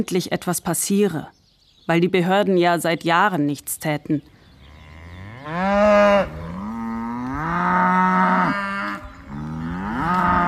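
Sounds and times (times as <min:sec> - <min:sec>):
speech: 0:00.0 - 0:04.3, 0:05.4 - 0:06.4
neglected cattle mooing on a pasture beside empty water troughs: 0:04.7 - 0:10.4.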